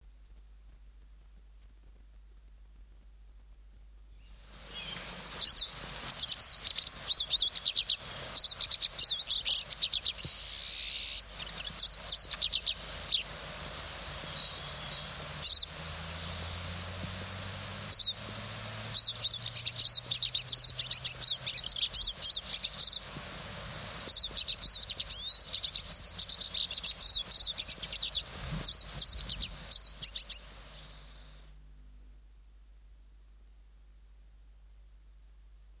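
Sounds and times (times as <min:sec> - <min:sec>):
pine siskin songbirds singing: 0:04.2 - 0:31.5.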